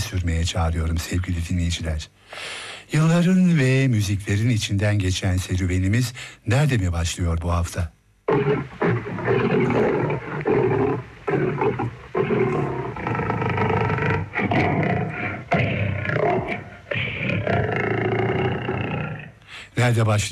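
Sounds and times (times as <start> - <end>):
speech: 0.2 - 8.8, 19.8 - 20.2
lion roaring and growling: 8.3 - 19.4.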